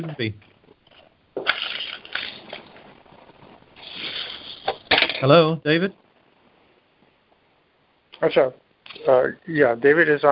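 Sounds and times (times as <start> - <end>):
speech: 0.0 - 0.6, 5.2 - 6.0, 8.2 - 10.3
papers rustling: 0.4 - 5.4.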